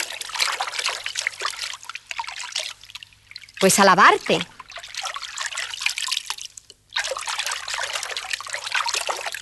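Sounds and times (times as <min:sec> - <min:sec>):
water trickling in a bright bubbly stream: 0:00.0 - 0:09.3
speech: 0:03.6 - 0:04.5.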